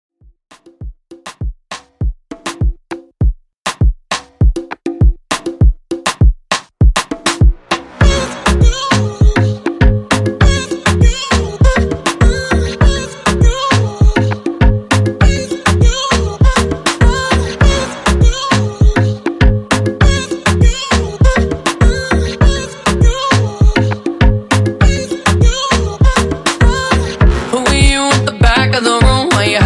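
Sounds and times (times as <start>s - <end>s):
Afro drum beat at 100 BPM: 0.5s - 29.6s.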